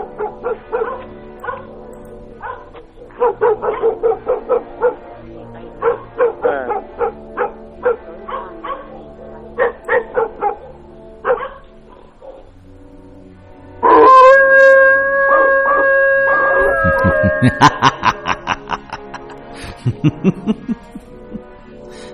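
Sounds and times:
dog barking and whining: 0.1s - 1.7s, 2.4s - 5.1s, 5.8s - 9.0s, 9.6s - 12.4s, 13.8s - 18.1s
laughter: 16.6s - 22.1s.

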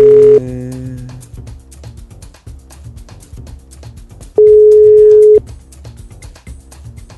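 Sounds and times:
ringback tone of an unanswered telephone call: 0.0s - 0.4s, 4.4s - 5.4s.

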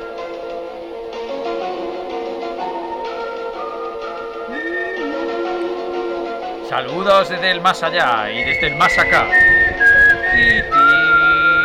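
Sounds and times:
person whistling a simple tune: 2.8s - 6.6s, 8.3s - 11.6s
speech: 6.7s - 9.6s, 10.4s - 10.8s.

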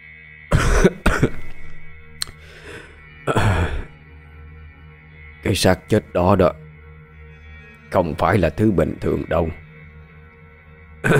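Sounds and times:
narrator imitating a man's persistent hacking cough: 0.5s - 1.6s, 3.3s - 3.9s
speech: 5.5s - 6.6s, 7.9s - 9.6s.

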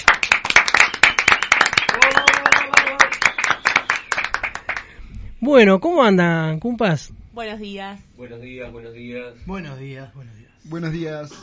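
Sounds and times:
crowd applauding a visiting band: 0.0s - 5.0s
speech: 5.5s - 11.4s.

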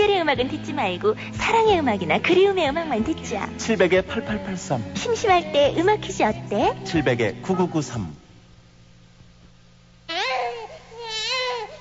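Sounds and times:
steady low hum: 0.0s - 11.7s
speech: 0.3s - 8.2s
newborn baby crying: 10.1s - 11.7s.

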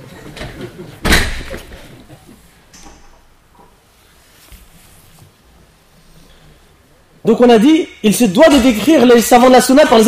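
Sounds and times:
faint low noise: 0.0s - 10.0s
door closing during a lesson: 0.4s - 1.7s
speech: 7.2s - 10.0s.

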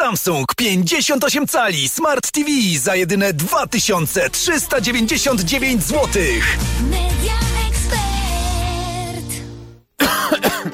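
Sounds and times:
speech: 0.1s - 7.4s
sustained musical tones: 3.1s - 9.8s
person coughing: 10.0s - 10.7s.

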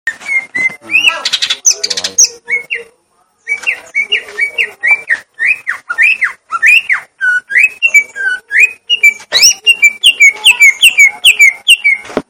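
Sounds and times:
leafbird singing whistled notes and harsh chattering: 0.1s - 12.1s.

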